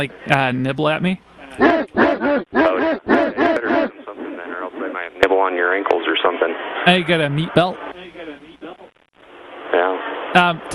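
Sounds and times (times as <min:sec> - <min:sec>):
speech: 0:00.0 - 0:03.3, 0:04.9 - 0:08.2, 0:10.3 - 0:10.7
voice imitating Labradoodle dogs barking: 0:01.6 - 0:04.0.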